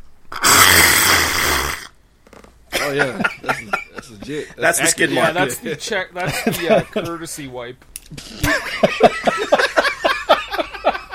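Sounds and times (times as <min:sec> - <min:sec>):
person imitating a fart with a raspberry-like sputter: 0:00.3 - 0:02.5
laughter: 0:02.7 - 0:07.4, 0:08.1 - 0:11.1
speech: 0:02.9 - 0:09.6.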